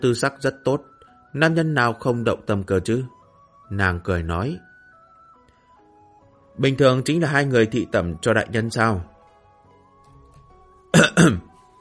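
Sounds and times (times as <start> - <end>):
speech: 0.0 - 4.7, 6.6 - 9.1, 10.9 - 11.5
man's hasty harsh cough: 10.9 - 11.5.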